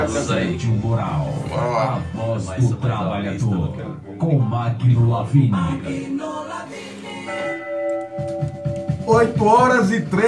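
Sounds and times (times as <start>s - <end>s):
speech: 0.0s - 7.4s, 9.1s - 10.2s
bell ringing with shimmering tones: 7.3s - 9.6s.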